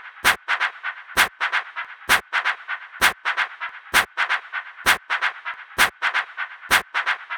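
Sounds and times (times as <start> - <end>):
techno drum kit: 0.2 - 7.3.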